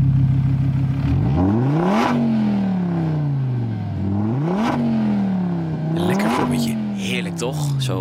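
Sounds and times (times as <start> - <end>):
sports car 2.5-litre five-cylinder engine revving through the gears: 0.3 - 7.9
speech: 7.4 - 7.9.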